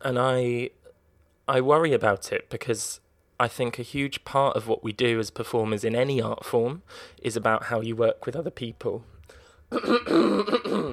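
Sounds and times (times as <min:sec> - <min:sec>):
speech: 0:00.0 - 0:00.8, 0:01.5 - 0:10.9
person clearing throat with a rough guttural rasp: 0:09.7 - 0:10.9
person small cough: 0:09.7 - 0:10.9.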